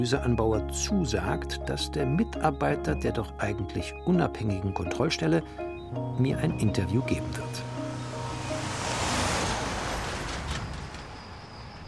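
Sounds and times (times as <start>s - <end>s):
speech: 0.0s - 7.7s
outdoor traffic rumble at a roadside parking lot in the evening: 5.2s - 11.8s.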